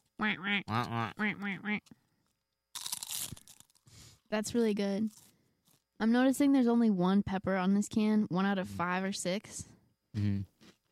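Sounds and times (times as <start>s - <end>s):
person imitating loud nasal duck quacks: 0.2s - 1.9s
speech: 0.2s - 2.0s, 4.3s - 5.3s, 6.0s - 10.5s.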